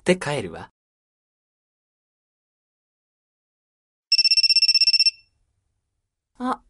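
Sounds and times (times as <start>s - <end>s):
speech: 0.0s - 0.7s, 6.4s - 6.6s
phone ringtone trilling in high pulsed tones: 4.1s - 5.3s.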